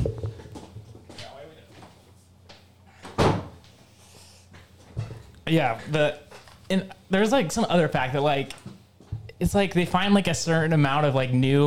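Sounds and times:
door swinging shut with a thud: 3.1 - 3.6
speech: 5.5 - 8.6, 9.4 - 11.6.

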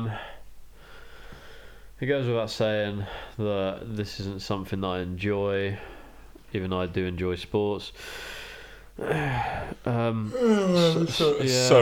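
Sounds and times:
speech: 2.0 - 8.4, 9.0 - 11.8
person yawning: 9.0 - 11.7.

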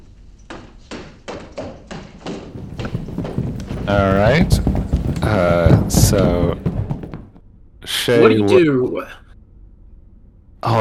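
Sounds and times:
rapid running footsteps down a hallway: 0.0 - 7.4
speech: 3.9 - 6.6, 8.0 - 9.2, 10.6 - 10.8.

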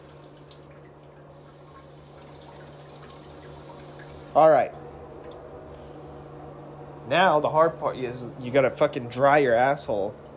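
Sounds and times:
bidet water spraying: 0.0 - 0.6, 1.3 - 4.4
low constant hum: 0.0 - 10.3
speech: 4.4 - 4.8, 7.1 - 10.2.

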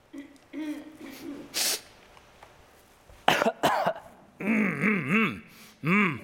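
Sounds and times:
person coughing: 0.2 - 1.6, 3.3 - 6.2
person sniffing: 0.6 - 2.0, 5.4 - 5.9
wavering voiced murmurs: 4.4 - 6.2.

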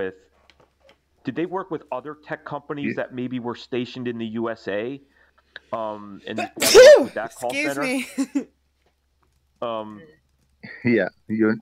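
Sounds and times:
speech: 0.0 - 0.3, 1.2 - 8.6, 9.6 - 10.2, 10.8 - 11.6
loud sharp sneeze: 6.4 - 7.3.

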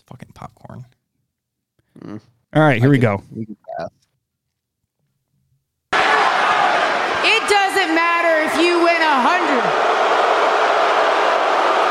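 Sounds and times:
speech: 0.1 - 1.0, 2.2 - 4.0
loud crowd booing: 5.9 - 11.8.

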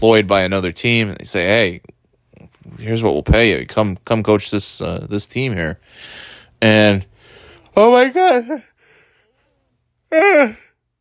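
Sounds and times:
speech: 0.0 - 2.0, 2.6 - 7.1, 7.8 - 8.7, 10.1 - 10.6
person yawning: 10.1 - 10.8.

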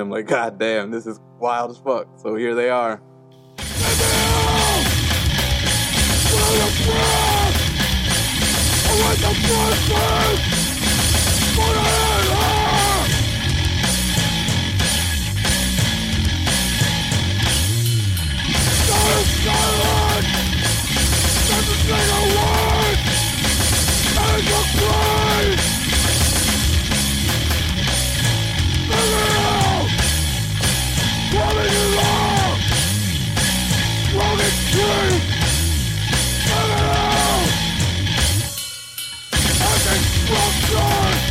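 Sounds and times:
speech: 0.0 - 3.1, 9.0 - 10.6
relentless drum machine: 3.6 - 17.8, 18.4 - 41.2
distorted bass: 3.6 - 38.6, 39.4 - 41.2
screamed yelling vocals: 3.7 - 5.1, 6.1 - 7.8, 8.8 - 10.5, 11.4 - 13.2, 18.8 - 20.5, 21.3 - 23.1, 24.0 - 25.7, 28.8 - 30.0, 31.2 - 32.7, 34.1 - 35.4, 36.4 - 37.7, 39.5 - 41.2.

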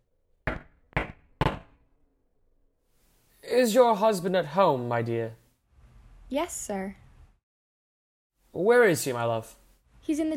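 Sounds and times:
firm knocking on a wooden front door: 0.5 - 1.8
speech: 3.6 - 5.4, 6.3 - 7.0, 8.6 - 10.3.

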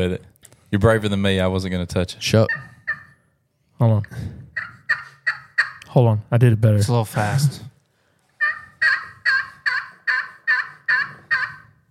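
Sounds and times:
speech: 0.0 - 2.7, 3.8 - 4.4, 6.0 - 7.7
turkey call sounding turkey hen yelps: 2.5 - 3.2, 4.6 - 5.8, 8.4 - 11.8.

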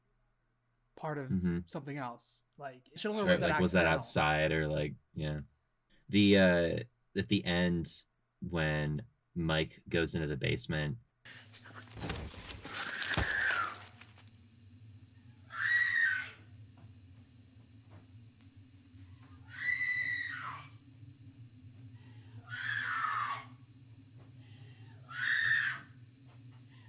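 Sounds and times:
steady low hum: 0.0 - 26.8
speech: 1.0 - 5.5, 6.1 - 12.4
woman screaming upstairs in a film: 15.5 - 16.4, 19.4 - 20.7, 22.4 - 23.6, 25.1 - 25.9.

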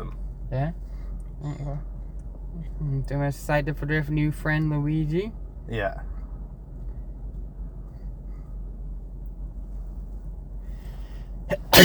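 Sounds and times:
speech: 0.0 - 0.8, 1.4 - 1.9, 2.5 - 6.1
low rumble: 0.0 - 11.8
sneeze: 11.5 - 11.8.

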